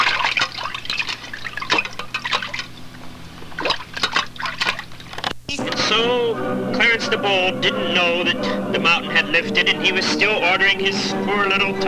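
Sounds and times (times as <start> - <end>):
water splashing and sloshing: 0.0 - 5.2
speech: 6.0 - 11.8.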